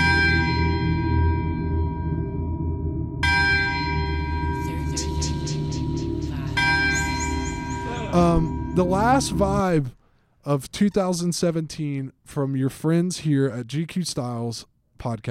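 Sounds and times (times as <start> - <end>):
church bells ringing: 0.0 - 9.8
dense low rumble: 2.1 - 9.9
speech: 8.2 - 15.3.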